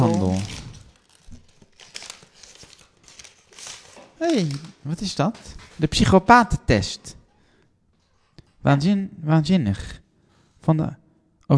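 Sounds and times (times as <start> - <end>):
gift wrapping paper from a bookshop torn and crumpled as a birthday present is unwrapped: 0.0 - 5.8
speech: 0.2 - 0.6, 4.2 - 7.2, 8.6 - 10.0, 10.6 - 11.5.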